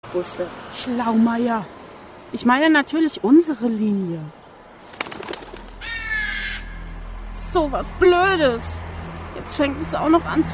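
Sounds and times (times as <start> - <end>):
speech: 0.1 - 4.4, 7.5 - 10.5
bird calling: 4.8 - 7.1.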